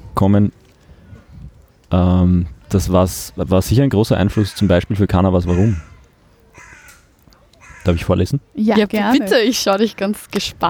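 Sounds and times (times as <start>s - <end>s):
speech: 0.2s - 0.6s, 1.9s - 5.9s, 7.9s - 10.6s
crow cawing outdoors: 4.3s - 8.1s.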